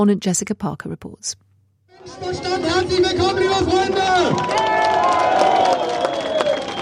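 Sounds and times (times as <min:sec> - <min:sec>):
speech: 0:00.0 - 0:05.9
large crowd at political rally roaring and cheering: 0:01.9 - 0:06.8
whistles: 0:05.6 - 0:06.8.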